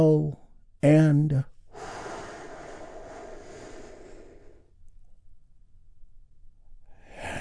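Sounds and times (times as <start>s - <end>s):
speech: 0.0s - 1.9s
big deep breath in and out during a guided relaxation exercise: 1.6s - 4.8s, 6.9s - 7.3s.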